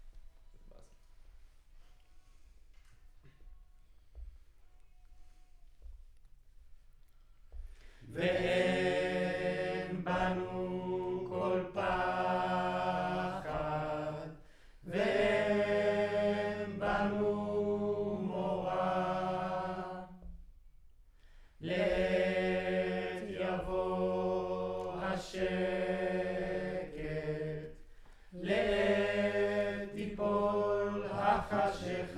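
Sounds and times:
choir recorded on a center U47 microphone: 8.0s - 20.4s, 21.6s - 32.1s.

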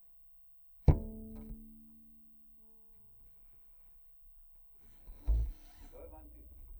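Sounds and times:
bass guitar in C recorded direct: 0.9s - 1.9s, 5.0s - 6.7s.

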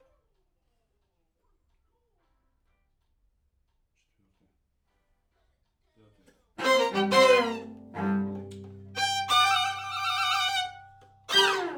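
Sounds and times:
main strings: 6.6s - 11.7s.

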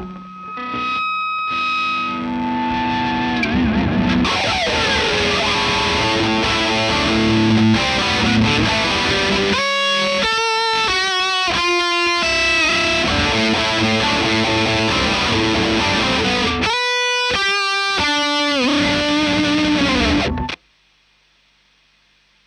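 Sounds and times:
guitar line through Marshal amplifier: 0.0s - 20.6s.

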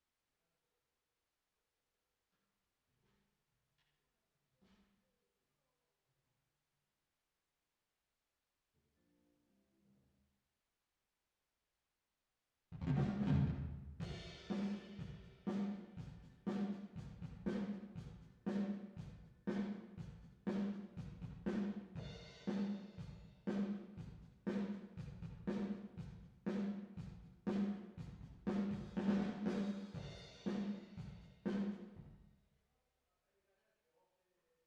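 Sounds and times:
drum with reverb: 12.8s - 32.2s.

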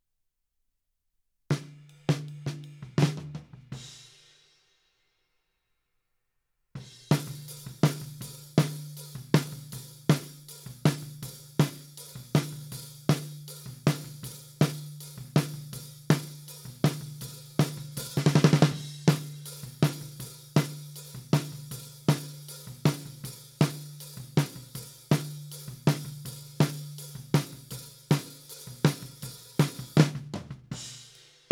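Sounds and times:
snare top at 160 BPM: 7.0s - 31.5s.

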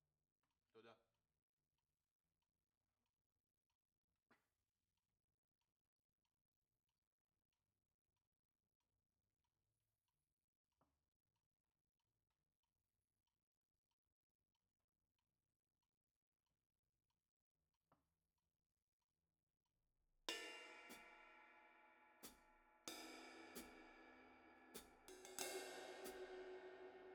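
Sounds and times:
drum overheads: 20.3s - 21.3s, 22.2s - 27.1s.

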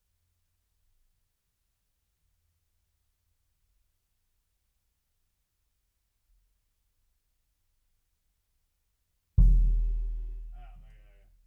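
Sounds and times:
bass drum: 9.4s - 11.1s.

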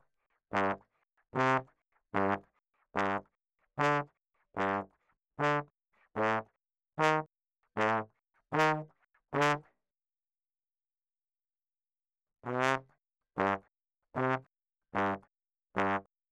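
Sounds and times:
ragtime trombone: 0.5s - 0.8s, 1.3s - 2.4s, 2.9s - 9.6s, 12.5s - 16.1s.

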